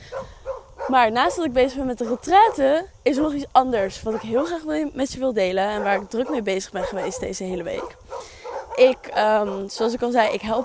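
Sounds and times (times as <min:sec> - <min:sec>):
dogs barking at a kennel: 0:00.0 - 0:02.7, 0:04.1 - 0:04.6, 0:05.6 - 0:10.6
speech: 0:00.9 - 0:10.6.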